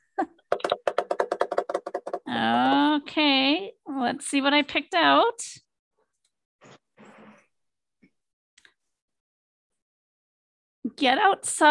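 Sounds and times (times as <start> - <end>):
pens tapped as a drum roll: 0.5 - 2.3
speech: 2.3 - 5.6, 11.0 - 11.6.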